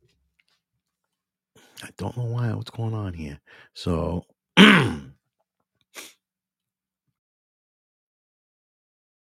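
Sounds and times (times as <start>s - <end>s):
speech: 1.8s - 5.2s
person clearing throat: 4.6s - 5.2s.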